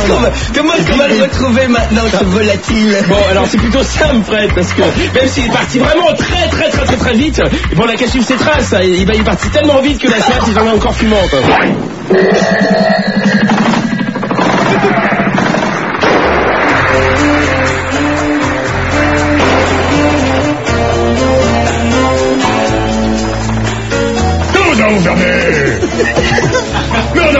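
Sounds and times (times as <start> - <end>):
speech: 0.1 - 13.5, 14.7 - 15.2
laughter: 2.0 - 7.6, 9.9 - 11.4, 14.5 - 15.4, 24.5 - 27.3
rapid explosive bursts and crackling pops: 13.3 - 20.8
loud dense orchestral score: 16.6 - 27.3.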